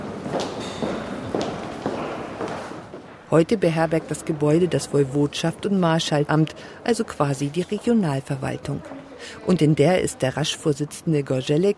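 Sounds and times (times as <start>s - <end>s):
footsteps walking along a wide second-floor corridor in a regional government building: 0.0s - 9.2s
speech: 3.3s - 11.7s.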